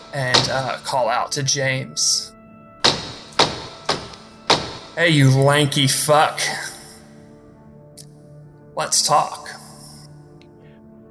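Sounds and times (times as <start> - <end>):
speech: 0.1 - 2.4, 5.0 - 6.7, 8.8 - 9.6
two wooden branches banged together: 0.3 - 0.8, 2.8 - 5.0.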